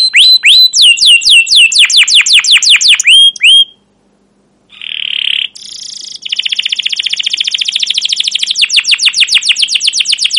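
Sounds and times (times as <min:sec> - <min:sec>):
canary singing long excited cuit cuit phrases: 0:00.0 - 0:03.9, 0:04.7 - 0:10.3.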